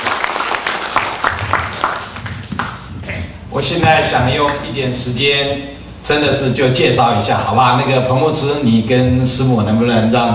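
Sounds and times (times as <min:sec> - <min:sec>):
crowd at a church gathering applauding: 0:00.0 - 0:02.9
speech: 0:03.6 - 0:10.3.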